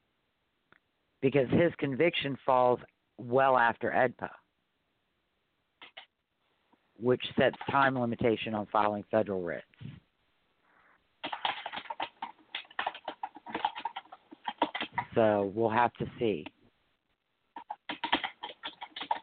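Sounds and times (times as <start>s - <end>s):
speech: 1.2s - 4.4s, 7.0s - 10.0s, 15.2s - 16.6s
typing on a computer keyboard: 5.8s - 6.1s, 7.5s - 8.0s, 11.2s - 15.1s, 17.6s - 19.2s.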